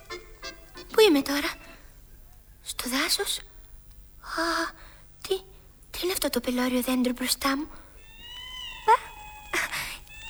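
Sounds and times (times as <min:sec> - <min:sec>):
steady tonal background: 0:00.0 - 0:01.8
speech: 0:01.0 - 0:01.6, 0:02.8 - 0:03.5, 0:04.4 - 0:07.8
Angora cat meowing: 0:07.9 - 0:10.2.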